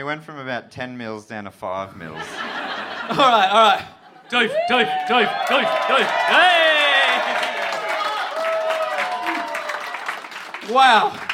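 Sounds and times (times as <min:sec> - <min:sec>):
speech: 0:00.0 - 0:06.8, 0:10.7 - 0:11.3
laughter: 0:02.0 - 0:08.0
audience cheering with raised voices whooping: 0:04.3 - 0:11.3
audience clapping: 0:04.4 - 0:11.3.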